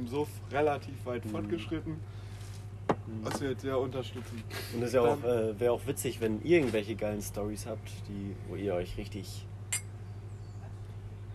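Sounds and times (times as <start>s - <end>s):
speech: 0.0s - 2.2s, 3.1s - 9.5s
steady low hum: 0.0s - 11.3s
glasses clinking in a toast: 9.7s - 9.9s.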